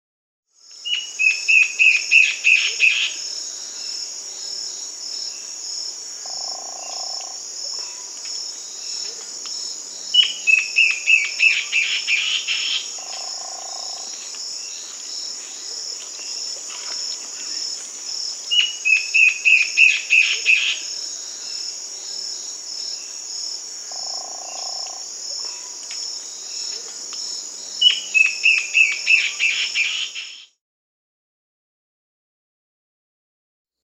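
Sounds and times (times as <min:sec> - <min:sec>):
warbling antbird Hypocnemis cantator singing in Peru: 0:00.8 - 0:03.2, 0:10.2 - 0:17.7, 0:18.5 - 0:20.9, 0:27.8 - 0:30.4.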